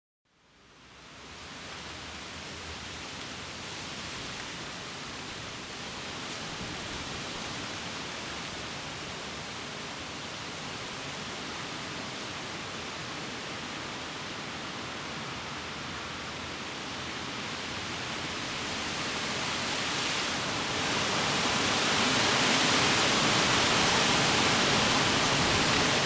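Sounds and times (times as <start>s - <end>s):
tree leaves rustling: 0.8s - 26.0s
gusts of wind: 15.4s - 26.0s.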